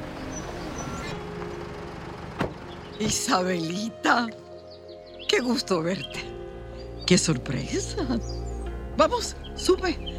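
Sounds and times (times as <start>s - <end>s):
car engine rumbling as it pulls up: 0.0s - 4.0s
speech: 3.0s - 4.4s, 5.3s - 6.4s, 7.1s - 10.1s.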